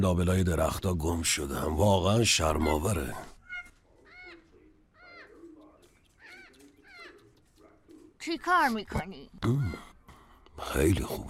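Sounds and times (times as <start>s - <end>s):
speech: 0.0s - 3.3s, 8.2s - 9.9s, 10.6s - 11.2s
faint noise: 0.0s - 11.2s
bird calling with raspy squawks: 2.3s - 8.7s.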